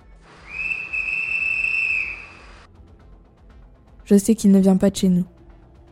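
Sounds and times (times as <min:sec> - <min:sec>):
shrill whistle blast: 0:00.4 - 0:02.7
speech: 0:04.1 - 0:05.4.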